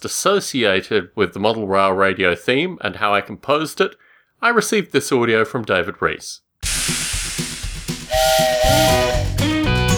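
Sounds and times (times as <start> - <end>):
speech: 0.0 - 7.1
hissing steam engine: 6.6 - 9.4
steam train chuffing: 6.6 - 9.7.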